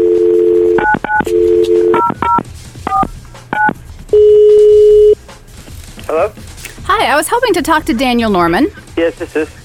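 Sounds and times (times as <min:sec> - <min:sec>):
steady telephone ringing tone: 0:00.0 - 0:03.0, 0:03.6 - 0:05.2
speech: 0:07.4 - 0:09.6.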